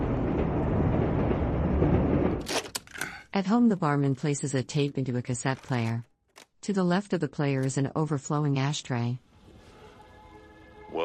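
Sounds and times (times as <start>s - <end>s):
train passing overhead: 0.0s - 2.4s
speech: 3.4s - 9.3s.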